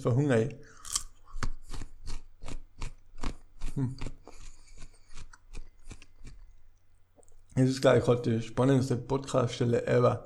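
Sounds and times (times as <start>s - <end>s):
speech: 0.0s - 0.8s, 3.8s - 4.2s, 7.6s - 10.2s
person biting and chewing raw kohlrabi: 0.6s - 7.6s.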